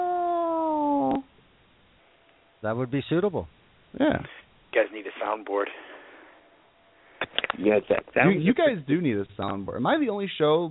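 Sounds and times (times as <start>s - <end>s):
person imitating a cat meow: 0.0s - 1.3s
speech: 2.6s - 5.9s, 7.6s - 10.7s.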